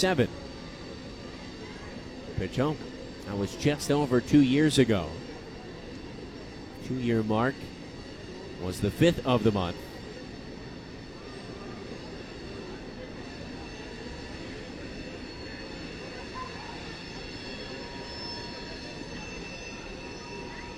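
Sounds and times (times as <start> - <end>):
speech: 0.0 - 0.5, 2.4 - 5.3, 6.8 - 7.8, 8.6 - 9.9
train rumbling past during a baseball game: 0.0 - 20.7
high metallic screeching from train wheels: 17.0 - 20.4.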